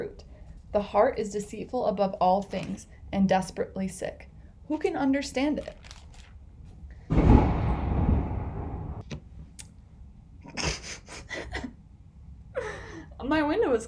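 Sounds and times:
speech: 0.0 - 5.9, 13.3 - 13.8
thunder booming outside: 7.1 - 9.0.

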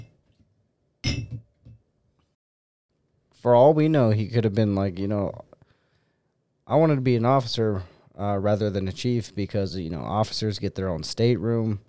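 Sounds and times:
glasses clinking in a toast: 1.0 - 1.4
speech: 3.4 - 5.5, 6.7 - 11.8.

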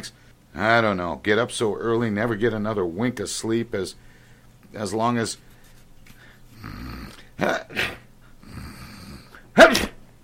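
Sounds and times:
speech: 0.0 - 4.1, 4.7 - 5.5, 7.4 - 8.0, 9.6 - 9.8
faint steady hum: 0.0 - 10.2
person sneezing: 7.2 - 8.1, 9.3 - 10.0.

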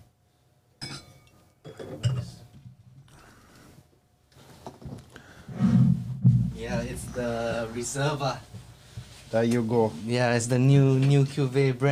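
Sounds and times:
wine glasses clinking during a wine tasting: 0.8 - 2.4
speech: 6.6 - 8.5, 9.3 - 11.8.

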